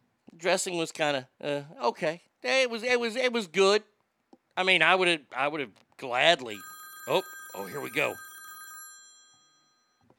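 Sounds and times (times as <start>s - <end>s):
speech: 0.4s - 3.9s, 4.6s - 8.3s
old-fashioned telephone bell ringing: 6.4s - 10.1s.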